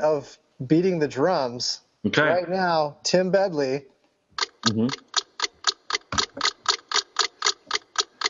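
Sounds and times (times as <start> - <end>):
speech: 0.0 - 3.9, 4.6 - 5.0
clock ticking: 4.4 - 8.2.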